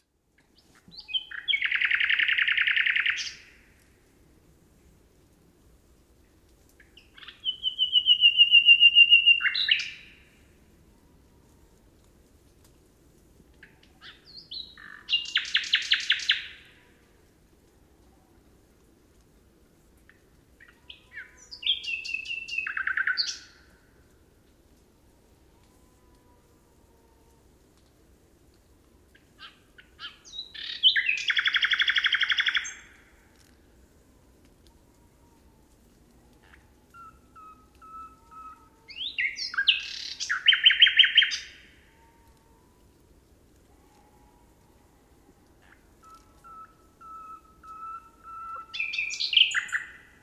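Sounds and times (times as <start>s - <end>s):
nightingale: 0.4s - 3.9s, 6.8s - 11.2s, 13.6s - 16.9s, 20.1s - 23.7s, 29.1s - 33.6s, 34.6s - 43.0s, 43.6s - 50.2s.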